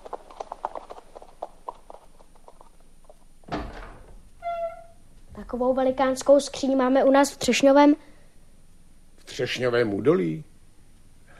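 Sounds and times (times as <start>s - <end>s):
horse hooves clip-clopping at a walking pace: 0.0s - 4.6s
speech: 5.5s - 8.1s, 9.4s - 10.5s.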